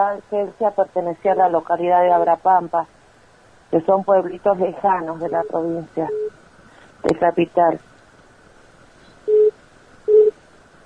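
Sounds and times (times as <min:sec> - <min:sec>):
speech: 0:00.0 - 0:03.0, 0:03.7 - 0:06.4, 0:07.0 - 0:07.9
faint hiss: 0:00.0 - 0:10.8
short mid-pitched telephone call beeps: 0:09.3 - 0:10.4.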